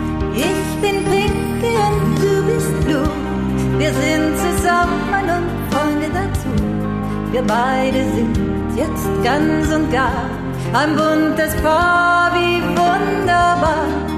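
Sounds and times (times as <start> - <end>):
person singing: 0.2 - 14.1.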